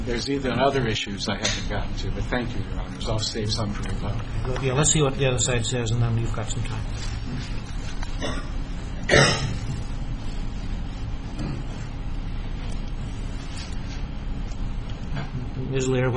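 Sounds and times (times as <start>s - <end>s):
steady low hum: 0.0s - 16.1s
speech: 0.1s - 8.5s, 9.1s - 9.7s, 15.7s - 16.1s
person coughing: 8.2s - 9.7s
soft throat noises: 11.3s - 11.8s.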